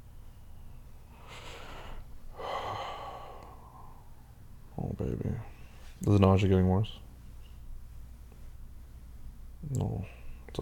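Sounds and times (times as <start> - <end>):
nauseous person taking deep breaths: 1.1 - 4.2
speech: 5.0 - 7.0, 9.7 - 10.6.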